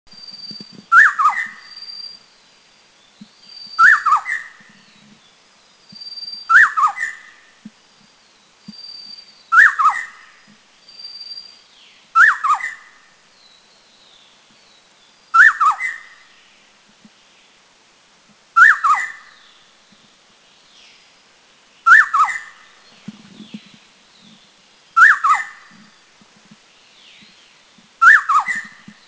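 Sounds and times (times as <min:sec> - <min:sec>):
Spot-breasted Scimitar Babbler in Taiwan: 0:00.3 - 0:02.2, 0:03.5 - 0:05.1, 0:06.0 - 0:07.4, 0:08.7 - 0:10.4, 0:12.2 - 0:13.0, 0:15.4 - 0:16.2, 0:18.6 - 0:19.5, 0:21.8 - 0:24.4, 0:25.0 - 0:26.0, 0:28.0 - 0:29.0.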